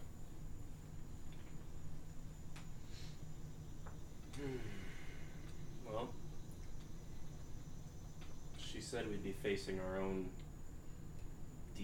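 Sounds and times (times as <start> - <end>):
cicadas chirping: 0.0 - 11.8
speech: 4.4 - 4.9, 5.9 - 6.2, 8.8 - 10.4.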